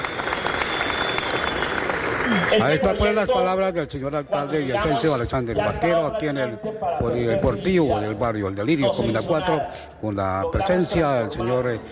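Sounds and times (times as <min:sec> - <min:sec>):
audience applause at a public neighbourhood event in a sports hall: 0:00.0 - 0:02.8
speech: 0:02.5 - 0:11.9.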